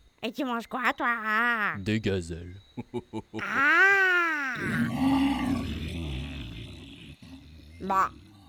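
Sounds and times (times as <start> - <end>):
speech: 0.2 - 5.6, 7.8 - 8.2
loud deep tiger roar: 4.6 - 8.4.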